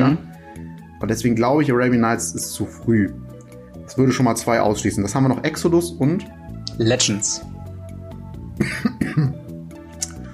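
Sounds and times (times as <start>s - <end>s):
speech: 0.0s - 0.3s, 1.0s - 3.3s, 3.9s - 7.5s
harsh spluttering coughs after choking: 8.6s - 9.4s
small throat-clearing: 8.6s - 9.4s.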